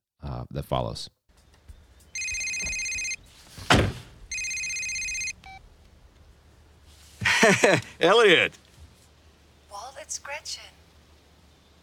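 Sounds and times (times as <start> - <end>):
speech: 0.4 - 1.2, 7.4 - 8.6, 10.1 - 10.8
phone ringing inside a parked car in a suburb: 2.2 - 3.2, 4.3 - 5.6
dull thump: 3.6 - 4.2
laughter: 7.2 - 8.0.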